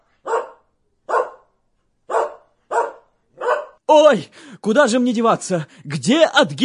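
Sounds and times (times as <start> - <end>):
dog barking: 0.2 - 3.8
speech: 3.9 - 6.6.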